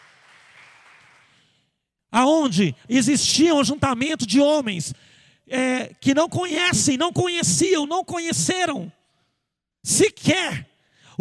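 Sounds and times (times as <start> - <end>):
crowd applause: 0.0 - 1.4
speech: 2.2 - 9.0, 9.8 - 11.1.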